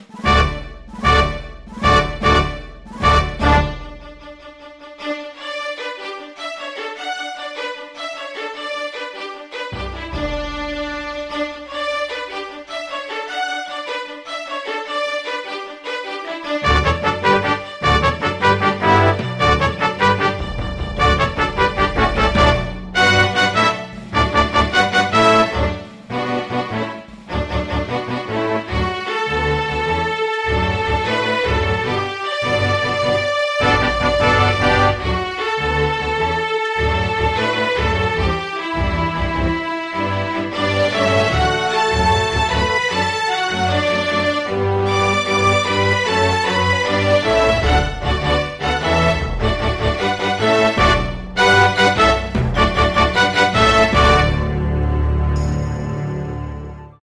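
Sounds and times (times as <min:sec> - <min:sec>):
software instrument flute: 0:00.0 - 0:04.0, 0:16.6 - 0:55.4
software instrument brass: 0:00.0 - 0:09.0, 0:09.6 - 0:57.0
software instrument strings: 0:00.0 - 0:57.0.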